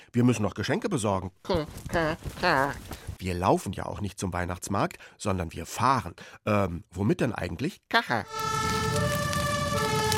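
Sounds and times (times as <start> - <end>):
speech: 0.1 - 10.0
fire engine siren from a fire engine driving through heavy snow: 8.3 - 10.1.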